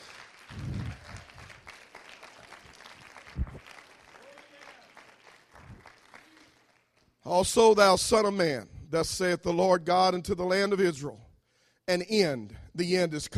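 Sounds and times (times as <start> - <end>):
crowd noise: 0.0 - 4.8
audience clapping hands: 0.0 - 7.2
speech: 7.3 - 11.2, 11.9 - 13.3.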